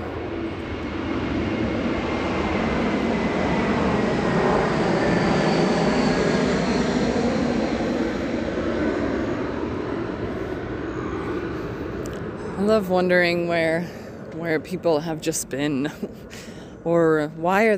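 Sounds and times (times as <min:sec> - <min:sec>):
jet airplane passing overhead: 0:00.0 - 0:17.7
speech: 0:12.7 - 0:17.7.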